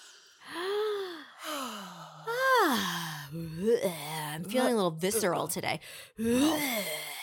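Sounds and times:
exaggerated deep breathing with gasping inhales and sighing exhales: 0.0 - 3.4
speech: 3.3 - 7.2.

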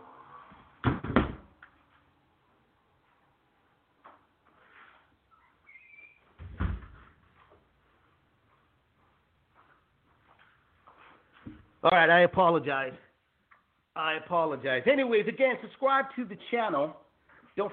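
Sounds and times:
door thudding shut: 0.8 - 1.5, 6.4 - 7.0
quiet shuffling: 1.7 - 11.9
faint squeak: 4.8 - 6.4
speech: 11.8 - 13.1, 14.0 - 17.0, 17.6 - 17.7.

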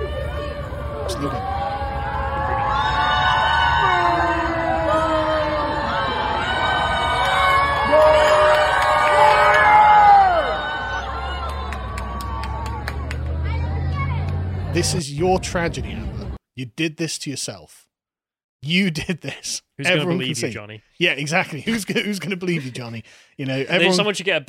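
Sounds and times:
people whooping: 0.0 - 13.8
group of people outside across the road shouting and cheering: 0.0 - 15.8
speech: 1.1 - 1.6, 14.8 - 17.9, 18.6 - 24.4.

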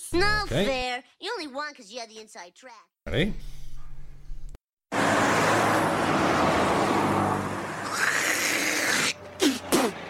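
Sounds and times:
speech: 0.2 - 3.6
cars rushing past on a busy road: 4.9 - 10.0.

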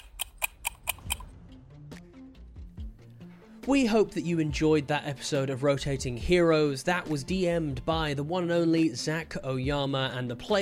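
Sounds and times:
clock ticking: 0.0 - 1.3
speech: 3.7 - 10.6.

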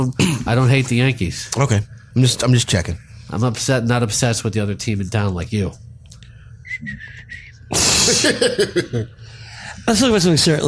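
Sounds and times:
speech: 0.0 - 5.9, 6.7 - 9.2, 9.8 - 10.6
faint breathy whistle drawn in on an inhale: 6.4 - 7.7.

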